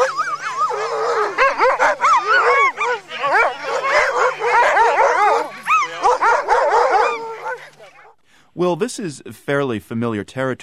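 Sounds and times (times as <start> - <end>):
sled dogs barking, yipping and whining excitedly: 0.0 - 8.2
speech: 8.6 - 10.6.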